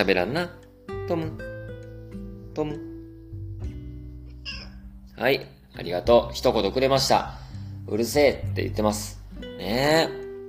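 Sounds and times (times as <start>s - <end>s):
speech: 0.0s - 1.5s, 2.6s - 2.9s, 5.2s - 10.2s
cat meowing on a person's lap: 4.3s - 4.9s.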